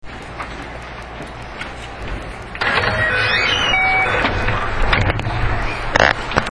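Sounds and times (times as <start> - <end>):
225 series 5000 train doors opening: 2.6 - 5.8.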